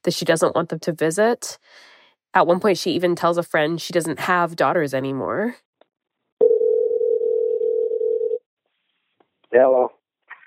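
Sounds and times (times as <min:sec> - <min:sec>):
speech: 0:00.0 - 0:05.7, 0:09.5 - 0:10.0
telephone dial tone from a recorded phone call: 0:06.4 - 0:08.4.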